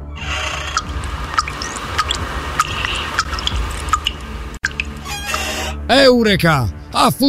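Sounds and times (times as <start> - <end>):
condensed water dripping from a device into a glass: 0.8 - 5.0
speech: 5.9 - 7.2.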